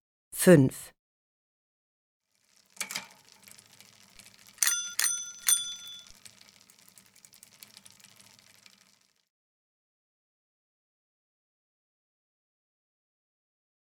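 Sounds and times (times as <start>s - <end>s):
speech: 0.4s - 0.9s
faint rattle of a bicycle: 2.3s - 9.3s
bicycle bell ringing: 2.8s - 8.1s.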